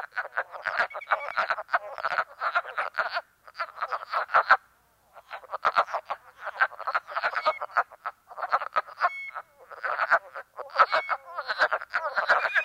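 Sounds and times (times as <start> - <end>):
wood frogs cackling chorus from a small woodland pool: 0.0 - 12.6
spring peeper piping: 12.2 - 12.6.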